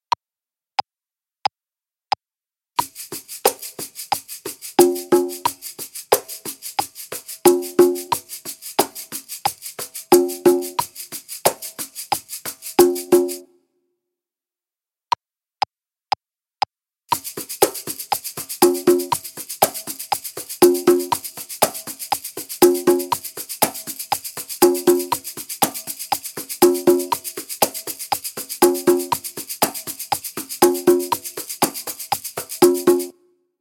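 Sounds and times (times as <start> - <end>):
congas: 2.8 - 13.5, 17.1 - 33.2
shaker: 2.8 - 13.5, 17.1 - 33.2.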